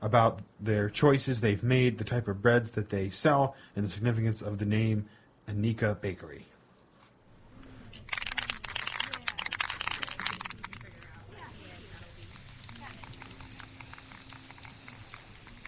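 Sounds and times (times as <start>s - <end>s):
speech: 0.0s - 6.5s
aerosol spray paint hissing on a cardboard sign: 11.4s - 15.6s.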